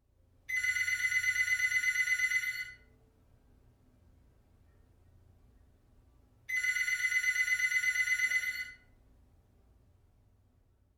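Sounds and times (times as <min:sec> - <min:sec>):
phone ringing with an untraditional ring: 0:00.5 - 0:02.9, 0:06.5 - 0:08.8.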